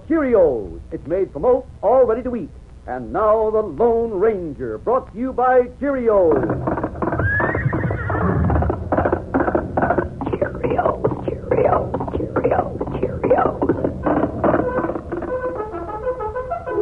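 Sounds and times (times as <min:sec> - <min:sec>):
speech: 0:00.1 - 0:06.7
horse hooves galloping: 0:06.1 - 0:16.8
horse whinnying: 0:06.6 - 0:10.1.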